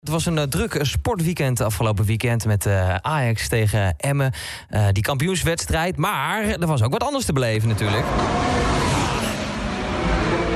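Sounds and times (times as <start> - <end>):
speech: 0.0 - 9.0
Formula 1 racing car engines roaring: 7.6 - 10.5.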